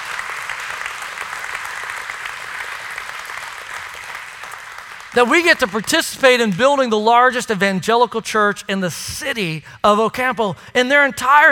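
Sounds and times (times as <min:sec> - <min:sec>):
audience applause: 0:00.0 - 0:06.8
speech: 0:05.2 - 0:11.5.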